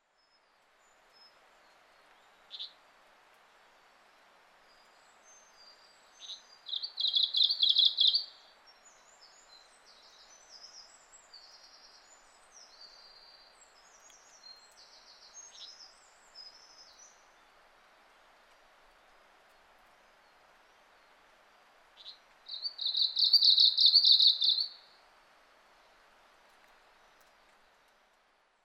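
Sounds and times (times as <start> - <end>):
Japanese leaf warbler: 4.7 - 17.5, 22.0 - 24.9.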